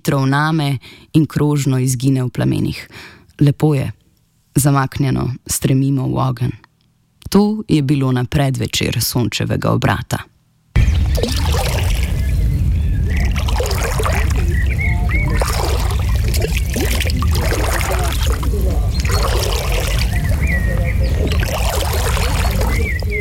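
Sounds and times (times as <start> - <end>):
speech: 0.0 - 4.0, 4.6 - 6.6, 7.3 - 10.3, 11.2 - 11.6
constant low wash of lake water: 10.8 - 23.2
people swimming and splashing in a lake: 10.8 - 23.2.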